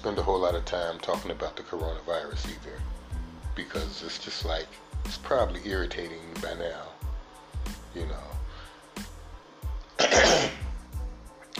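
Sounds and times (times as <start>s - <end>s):
speech: 0.0s - 3.0s, 3.6s - 7.0s, 8.0s - 8.4s
person clearing throat: 10.0s - 10.7s.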